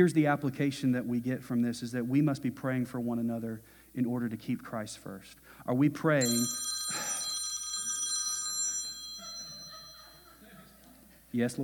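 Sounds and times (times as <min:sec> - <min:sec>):
speech: 0:00.0 - 0:07.0, 0:11.3 - 0:11.6
cell phone ringing during a sermon: 0:06.2 - 0:10.4.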